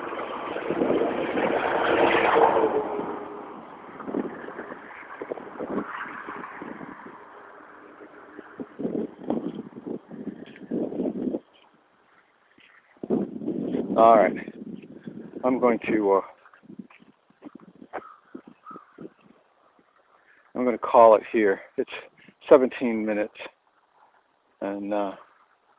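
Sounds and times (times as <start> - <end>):
car swooshing past: 0.0 - 10.6
gusty wind noise on the microphone: 0.0 - 20.2
softer uneven traffic rumble: 0.0 - 25.7
speech: 15.5 - 16.3, 20.9 - 23.6, 24.6 - 25.2.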